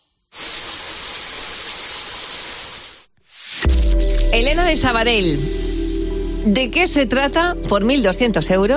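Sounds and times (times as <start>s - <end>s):
shower water pouring: 0.3s - 4.2s
tonal hum: 3.6s - 7.6s
speech: 4.3s - 5.6s, 6.4s - 8.7s.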